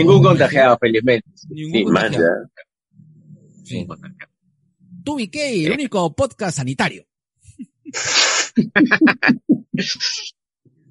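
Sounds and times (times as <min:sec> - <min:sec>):
speech: 0:00.0 - 0:02.6, 0:03.6 - 0:04.3, 0:05.0 - 0:07.1, 0:07.9 - 0:10.4
pet cat breathy hiss-like sound: 0:07.9 - 0:08.6
laughter: 0:08.6 - 0:09.5.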